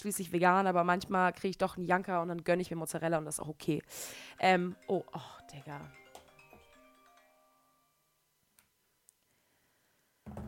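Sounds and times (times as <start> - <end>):
speech: 0.0 - 6.0
alarm clock ringing with a short electronic melody: 4.2 - 8.1.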